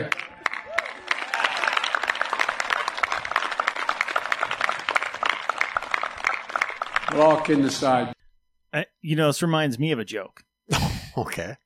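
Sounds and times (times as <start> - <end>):
class clapping: 0.0 - 8.2
speech: 7.2 - 11.6.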